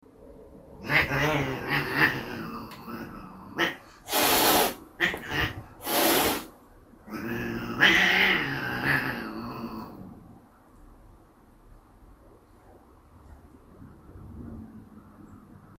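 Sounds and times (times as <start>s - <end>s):
two cats in conflict, one wanting to play: 0.8s - 6.5s, 7.1s - 10.2s.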